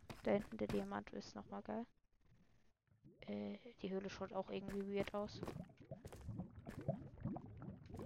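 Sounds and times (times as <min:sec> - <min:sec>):
speech: 0:00.3 - 0:02.0, 0:03.3 - 0:05.7
water flowing and bubbling in a video game: 0:04.8 - 0:08.0.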